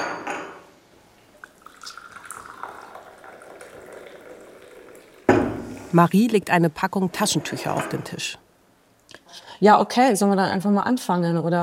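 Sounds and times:
coffee poured into a cup in a prison: 1.3 - 6.0
speech: 5.9 - 8.5, 9.6 - 11.6.

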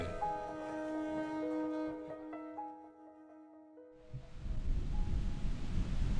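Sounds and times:
sustained tonal chord: 0.0 - 5.5
loud rumbling outdoor wind gusting and buffeting close to the microphone: 4.1 - 6.1.

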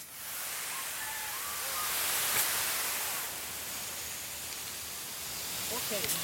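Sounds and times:
water spraying under pressure from a hydrant hose: 0.0 - 6.2
faint chirps: 0.6 - 2.6.

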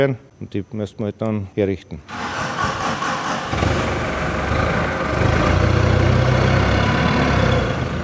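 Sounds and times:
speech: 0.0 - 2.2
forklift engine running in a storage hall: 2.1 - 8.0.

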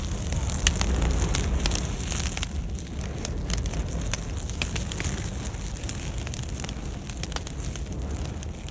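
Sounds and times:
intense blazing forest fire roaring: 0.0 - 8.6.

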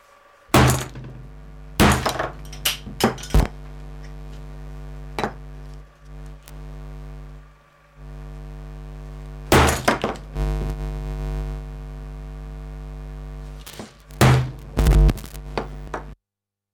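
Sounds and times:
humming feedback tones: 0.0 - 9.5, 10.2 - 15.9
steady electronic drone: 0.0 - 16.2
hammer smashing a loudspeaker: 0.6 - 3.5, 9.5 - 10.3, 13.7 - 14.7.

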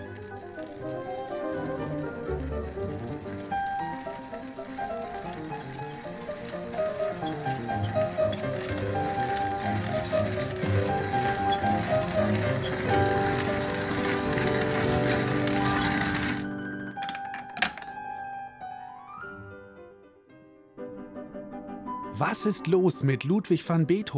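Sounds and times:
hand coffee grinder grinding coffee beans: 0.0 - 17.9
speech: 22.4 - 24.1.

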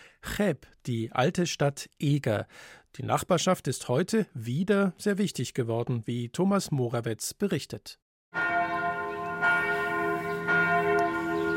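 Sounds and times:
speech: 0.3 - 8.5
large basilica church bells ringing: 8.3 - 11.5.

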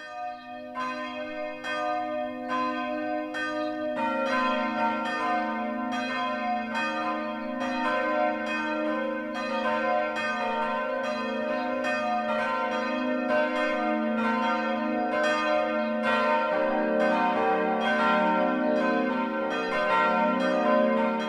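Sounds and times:
four new church bells of an Evangelical Lutheran church ringing the midday peal: 0.0 - 21.2.

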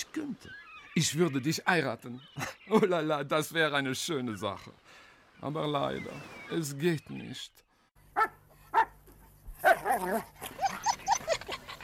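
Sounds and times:
speech: 0.0 - 7.6, 8.2 - 8.4, 9.8 - 10.4
female dog barking: 8.2 - 9.0
female dog whimpering and yelping: 9.6 - 11.8.

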